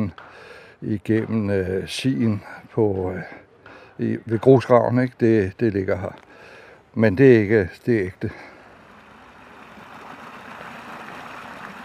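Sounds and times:
speech: 0.8 - 3.4, 4.0 - 6.2, 6.9 - 8.5
water trickling out of the ground: 8.5 - 11.8.

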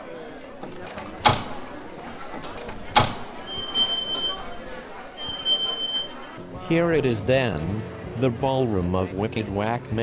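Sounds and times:
old panel doors clunking: 0.4 - 6.2
speech: 6.7 - 10.0.

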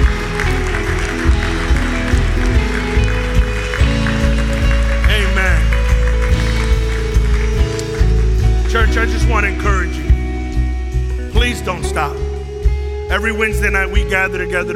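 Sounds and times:
audience clapping hands in praise: 0.0 - 9.4
loud live music with sustained chords and a thumping beat: 0.0 - 14.7
speech: 13.2 - 14.7.

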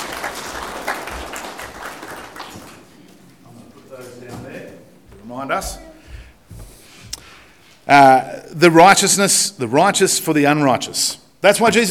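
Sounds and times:
audience applause: 0.0 - 3.0
speech: 5.4 - 5.9, 7.9 - 11.9.

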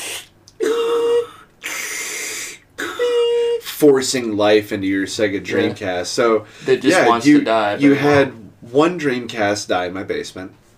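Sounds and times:
voice imitating a mechanical breathing machine: 0.0 - 3.7
speech: 3.8 - 10.7.

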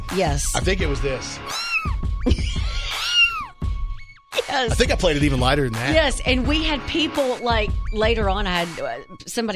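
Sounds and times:
music with a low rhythmic thumping: 0.0 - 1.2, 1.8 - 9.5
speech: 0.1 - 2.7, 4.5 - 9.5
kitten meowing: 1.5 - 3.5.

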